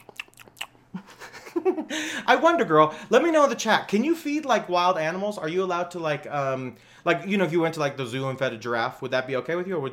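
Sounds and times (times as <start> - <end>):
mouth clicks: 0.0 - 0.8
wet ASMR chewing and biting with crisp crunches: 0.0 - 0.8
speech: 1.6 - 9.9.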